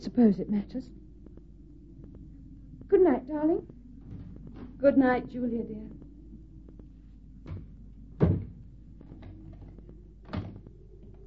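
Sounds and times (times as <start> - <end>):
speech: 0.0 - 1.0, 3.0 - 3.8, 4.8 - 6.0
door thudding shut: 8.2 - 8.6.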